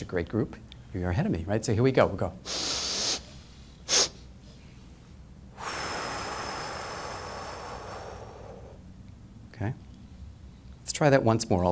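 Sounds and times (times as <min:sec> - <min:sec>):
speech: 0:00.1 - 0:02.6, 0:09.6 - 0:09.8, 0:11.0 - 0:11.7
person's long steady exhale: 0:02.4 - 0:04.8, 0:05.6 - 0:08.9
person inhaling through the nose in quick sniffs: 0:02.5 - 0:04.8.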